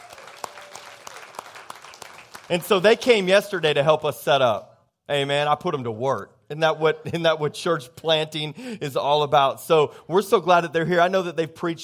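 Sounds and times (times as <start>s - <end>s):
room full of people applauding: 0.0s - 3.2s
speech: 2.5s - 11.8s.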